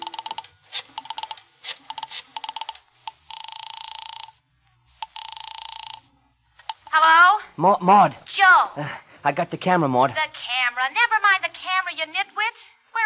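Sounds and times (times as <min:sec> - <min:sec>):
telephone being dialed with rapid clicking pulses: 0:00.0 - 0:07.0
telephone buzzing ring tones: 0:00.0 - 0:07.3
speech: 0:07.6 - 0:12.7.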